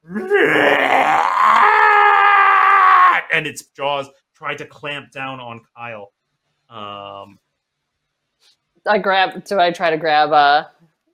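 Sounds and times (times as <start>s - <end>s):
voice imitating the shriek of a monstrous giant eel: 0.0s - 3.4s
speech: 0.2s - 1.7s, 3.4s - 6.1s, 8.9s - 10.8s.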